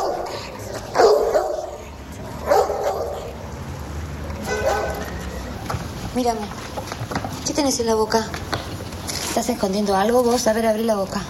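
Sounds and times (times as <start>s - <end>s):
small dog barking at a moderate distance: 0.0s - 1.8s, 2.4s - 3.3s, 4.4s - 5.1s
speech: 6.2s - 6.8s, 7.5s - 8.6s, 9.4s - 11.2s.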